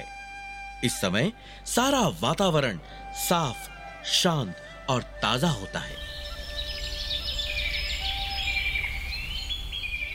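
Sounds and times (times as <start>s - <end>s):
speech: 0.8s - 6.2s
several birds chirping and twittering in the morning: 5.3s - 10.1s.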